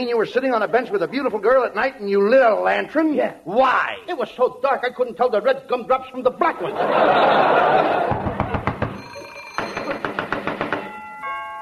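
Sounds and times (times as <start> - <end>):
speech: 0.0 - 8.3
laughter: 6.6 - 8.8
sharp raps or rings at a door: 8.1 - 9.0, 9.6 - 10.9.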